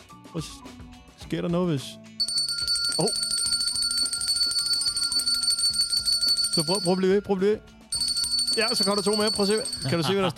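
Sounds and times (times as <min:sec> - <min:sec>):
speech: 0:00.3 - 0:02.1, 0:03.0 - 0:03.3, 0:06.6 - 0:07.7, 0:08.6 - 0:10.3
small bell ringing continuously and rapidly: 0:02.2 - 0:07.0, 0:07.9 - 0:10.0
laughter: 0:09.8 - 0:10.3.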